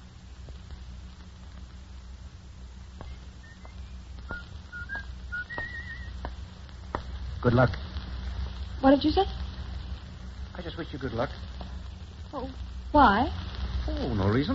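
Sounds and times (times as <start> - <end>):
low rumble: 0.0 - 14.5
rain-like hiss: 0.0 - 14.5
man whistling a tune while walking: 3.4 - 6.1
speech: 7.4 - 7.8, 8.8 - 9.4, 10.6 - 11.6, 12.4 - 14.5.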